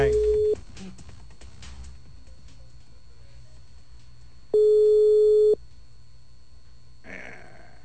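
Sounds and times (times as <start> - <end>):
telephone line tone while a call is being placed: 0.0 - 0.6, 4.5 - 5.6
faint low hum: 0.0 - 7.8.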